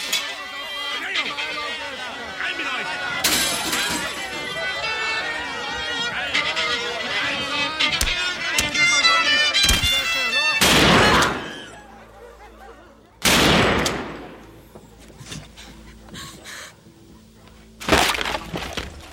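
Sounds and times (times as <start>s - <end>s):
laughter: 0.4s - 13.2s, 14.4s - 17.8s
gunshots: 10.6s - 11.6s, 13.2s - 14.4s.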